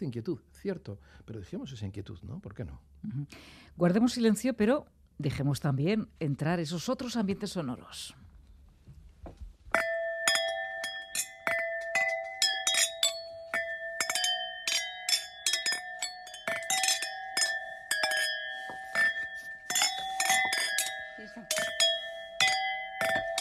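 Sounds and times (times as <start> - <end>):
speech: 0.0 - 8.2
wine glasses clinking in a toast: 9.7 - 23.3.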